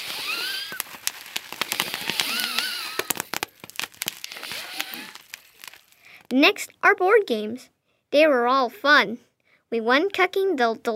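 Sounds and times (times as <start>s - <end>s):
fireworks lit at home crackling and popping: 0.0s - 6.8s
speech: 6.3s - 10.9s.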